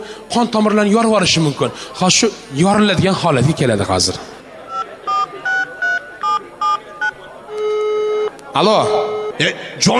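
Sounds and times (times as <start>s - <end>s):
speech: 0.4s - 4.3s, 8.5s - 9.9s
dual-tone beeps of a touch-tone phone keypad: 4.7s - 8.3s, 8.9s - 9.4s
steady telephone tone: 4.7s - 9.4s.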